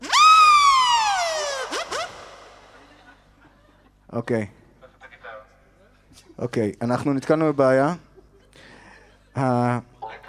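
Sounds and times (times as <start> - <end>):
person imitating a police car siren with their voice: 0.0 - 2.7
laughter: 1.6 - 4.1
speech: 4.1 - 4.6, 6.4 - 8.1, 9.4 - 9.9.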